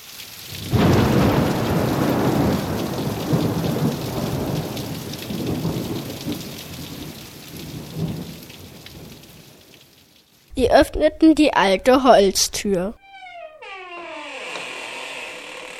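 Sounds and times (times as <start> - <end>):
steady heavy rain: 0.0 - 11.1
loud crack and deep rumble of thunder: 0.6 - 9.2
speech: 10.6 - 13.0.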